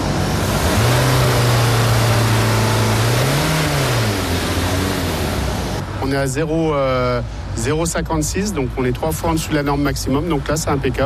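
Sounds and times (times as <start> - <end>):
car engine revving during an exhaust smoke emissions test at a vehicle inspection: 0.0 - 6.0
speech: 6.1 - 11.0.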